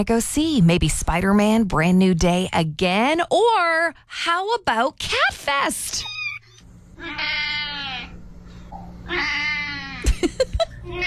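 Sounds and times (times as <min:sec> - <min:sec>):
speech: 0:00.0 - 0:06.2, 0:07.0 - 0:07.6, 0:09.1 - 0:09.5
low steady hum: 0:00.0 - 0:11.0
cat meowing: 0:06.0 - 0:08.1, 0:09.1 - 0:10.0
laughter: 0:10.0 - 0:10.9.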